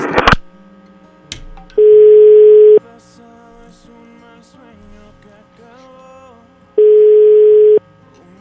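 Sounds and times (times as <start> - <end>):
telephone ringing tones while a call is dialed: 1.8 - 2.8, 6.8 - 7.8.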